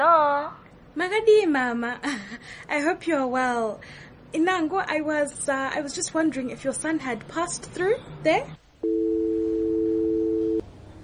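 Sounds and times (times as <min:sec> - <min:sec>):
speech: 0:01.0 - 0:09.0
telephone tone after the call is hung up: 0:08.8 - 0:10.6.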